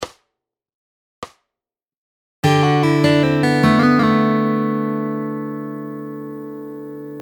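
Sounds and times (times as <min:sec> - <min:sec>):
fingerpicked guitar lick: 0:02.4 - 0:07.2.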